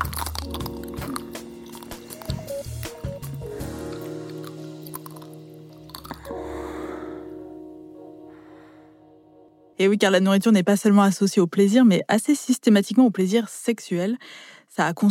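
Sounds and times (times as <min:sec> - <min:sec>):
person biting into an ice cream bar: 0:00.0 - 0:06.4
wet, squishy chewing: 0:00.0 - 0:06.4
steady music: 0:00.0 - 0:10.2
speech: 0:09.8 - 0:15.1.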